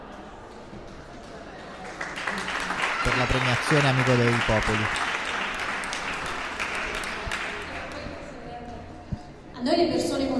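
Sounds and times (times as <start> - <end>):
audience applause at an evening costume parade and award ceremony: 0.4 - 8.1
speech: 3.1 - 5.1, 9.6 - 10.1.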